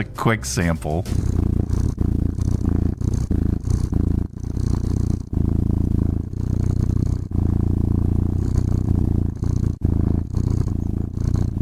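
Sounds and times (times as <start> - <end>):
speech: 0.0 - 1.4
cat purring from purr generator: 0.0 - 11.6.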